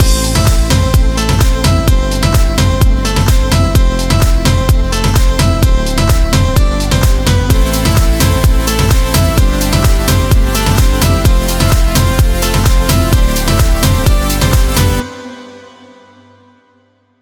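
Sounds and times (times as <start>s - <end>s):
128 BPM music mix: 0.0s - 16.6s.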